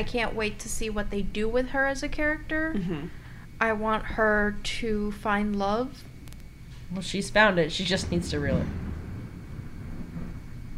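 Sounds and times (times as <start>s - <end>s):
speech: 0.0s - 6.1s, 6.9s - 8.8s
faint hiss of rain or wind: 6.9s - 10.7s
deep continuous thunder rumbling: 7.0s - 10.7s.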